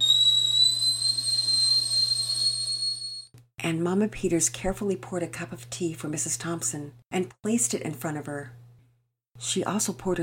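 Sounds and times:
kettle whistling on a kitchen stove: 0:00.0 - 0:03.3
speech: 0:03.7 - 0:08.6, 0:09.4 - 0:10.2.

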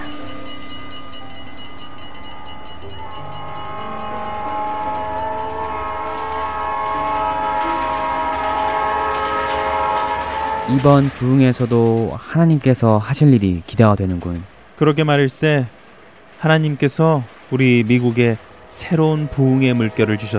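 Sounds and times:
train horn sounding in layered tones: 0:00.0 - 0:12.4, 0:17.9 - 0:20.3
train bound for Iowa rumbling on rails: 0:00.0 - 0:20.3
speech: 0:10.7 - 0:15.8, 0:16.4 - 0:20.3.

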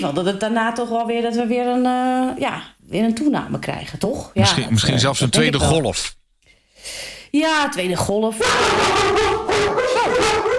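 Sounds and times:
speech: 0:00.0 - 0:06.2, 0:06.8 - 0:09.8
two guide dogs barking excitedly: 0:08.4 - 0:10.5.

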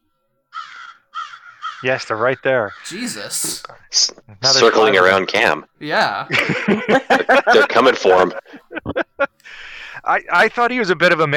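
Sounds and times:
crows cawing loudly: 0:00.5 - 0:03.6
speech: 0:01.8 - 0:11.3
laughter: 0:06.1 - 0:09.6.

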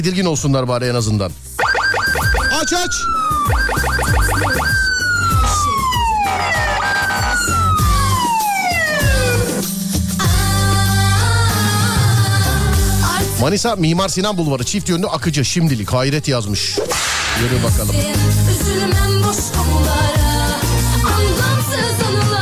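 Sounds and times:
speech: 0:00.0 - 0:01.6, 0:02.2 - 0:04.8, 0:13.4 - 0:20.3
rhythmic musical backing with thumping low beats: 0:01.6 - 0:02.6, 0:03.3 - 0:13.4, 0:16.9 - 0:22.4
emergency vehicle siren sound effect wailing: 0:01.6 - 0:09.7.

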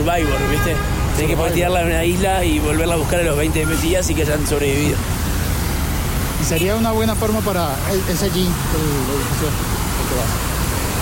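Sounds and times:
speech: 0:00.0 - 0:05.2, 0:06.4 - 0:10.5
street fountain water splashing: 0:00.0 - 0:11.0
traffic hum: 0:00.0 - 0:11.0.

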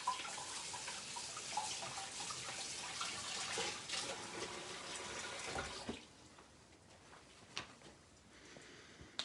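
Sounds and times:
tap water running while rinsing a sticky object: 0:00.0 - 0:06.1.

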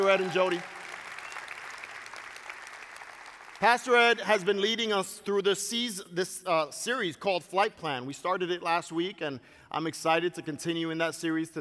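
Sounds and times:
speech: 0:00.0 - 0:00.8, 0:03.6 - 0:11.5
audience applauding: 0:00.0 - 0:04.2.

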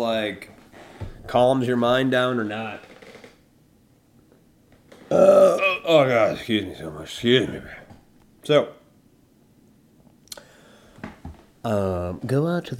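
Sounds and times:
speech: 0:00.0 - 0:00.6, 0:01.3 - 0:02.9, 0:05.1 - 0:07.8, 0:08.4 - 0:08.8, 0:11.6 - 0:12.7
hiccups: 0:05.1 - 0:05.9
voiced groan: 0:05.1 - 0:06.4.

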